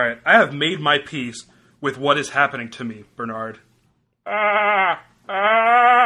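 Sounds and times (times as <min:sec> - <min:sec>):
speech: 0:00.0 - 0:06.0
voice imitating a goat bleating: 0:04.3 - 0:06.0.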